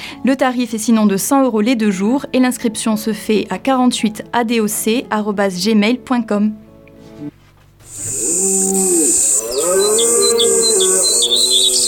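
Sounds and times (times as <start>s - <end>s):
speech: 0.2s - 6.6s, 8.0s - 11.8s
birds chirping in quick bursts: 7.9s - 11.8s
low wavering tonal call: 8.0s - 11.8s.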